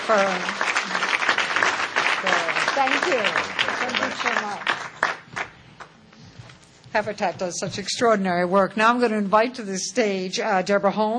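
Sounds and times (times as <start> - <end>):
audience applause at a corporate responsibility event: 0.0 - 5.6
speech: 0.1 - 1.0, 2.2 - 4.8, 6.9 - 11.1.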